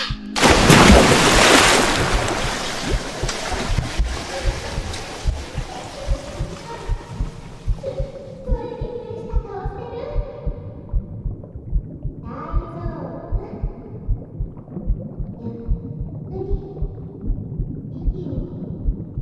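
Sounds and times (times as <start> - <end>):
low steady underwater hum: 0.0 - 19.1
underwater rumbling: 0.0 - 19.1
splash of someone jumping into water: 0.4 - 7.4
soft underwater bubbling pulses: 0.4 - 19.1.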